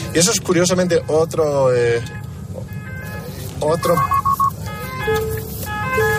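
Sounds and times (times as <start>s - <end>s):
low rumble of idling road traffic: 0.0s - 6.1s
speech: 0.2s - 2.2s, 3.6s - 4.2s, 5.0s - 5.4s
wavering electronic ambulance siren in a traffic jam: 0.9s - 6.1s
ambulance tonal beeps: 3.8s - 5.3s.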